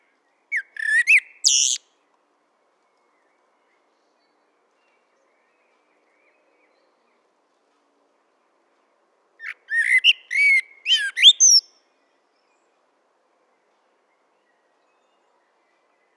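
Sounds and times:
Common blackbird Turdus merula singing: 0.5s - 1.8s, 9.4s - 11.7s.

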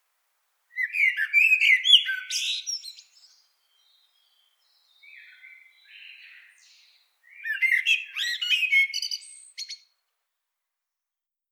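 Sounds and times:
common blackbird warbling, Turdus merula: 0.7s - 10.0s.

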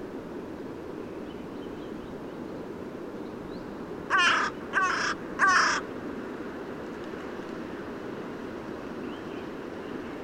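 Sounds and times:
carrion crow Corvus corone cawing: 4.1s - 5.9s.

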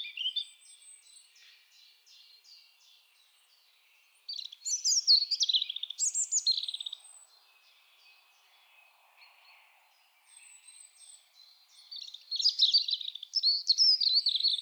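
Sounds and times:
European robin Erithacus rubecula singing: 0.0s - 14.5s.

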